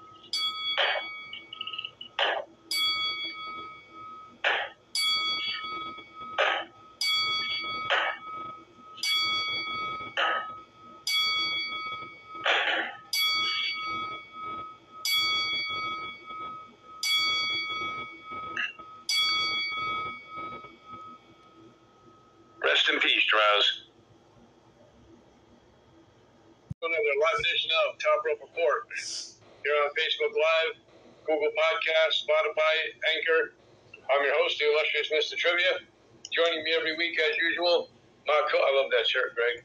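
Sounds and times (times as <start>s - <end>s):
bell tolling: 2.7s - 21.2s
voices: 22.6s - 23.8s, 26.8s - 39.6s
speech: 23.3s - 23.8s, 27.9s - 39.6s.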